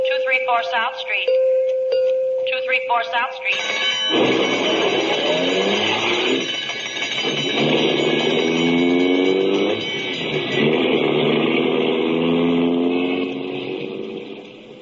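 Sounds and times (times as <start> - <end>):
speech: 0.4 - 1.6, 2.7 - 5.3
ambulance engine revving and pulling away: 3.6 - 14.8.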